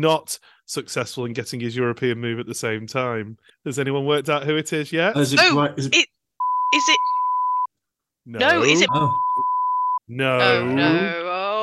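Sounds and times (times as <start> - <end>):
speech: 0.0 - 7.2, 8.2 - 9.5, 10.1 - 11.3
steady flat censor beeps: 6.4 - 7.7, 8.4 - 10.5.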